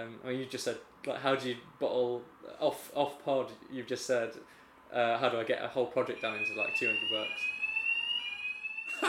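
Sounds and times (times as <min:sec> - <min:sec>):
speech: 0:00.0 - 0:07.6
fire alarm high-pitched electronic tone: 0:06.1 - 0:09.0.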